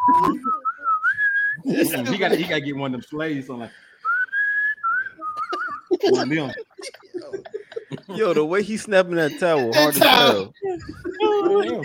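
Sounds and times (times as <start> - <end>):
person whistling a short cheerful tune: 0.0 - 1.6, 4.0 - 5.9
laughter: 1.6 - 2.7, 5.2 - 11.8
speech: 1.7 - 3.9, 6.0 - 7.0, 8.1 - 11.0, 11.6 - 11.8.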